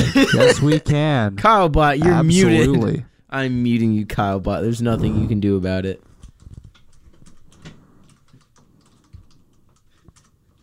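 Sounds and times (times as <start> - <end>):
laughter: 0.0 - 0.9
speech: 0.3 - 6.1
typing on a computer keyboard: 6.2 - 10.6.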